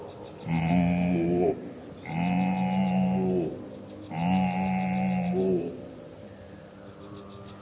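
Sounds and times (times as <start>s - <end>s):
voice imitating a cow mooing: 0.4s - 5.8s.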